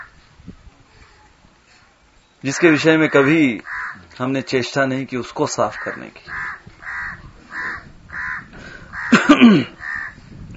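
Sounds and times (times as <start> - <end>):
speech: 2.4 - 6.5, 9.5 - 9.8
crow cawing: 2.5 - 4.1, 5.7 - 10.2.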